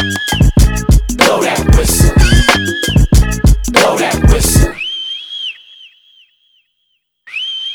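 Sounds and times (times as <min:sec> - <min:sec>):
shrill whistle blowing: 0:00.0 - 0:04.1, 0:04.7 - 0:06.6, 0:07.3 - 0:07.7
pounding busy musical beat: 0:00.0 - 0:04.8.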